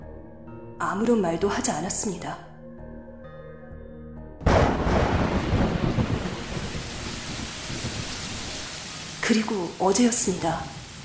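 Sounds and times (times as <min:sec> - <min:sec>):
speech: 0:00.8 - 0:02.5, 0:09.3 - 0:10.8
heavy rain pouring: 0:04.4 - 0:11.0.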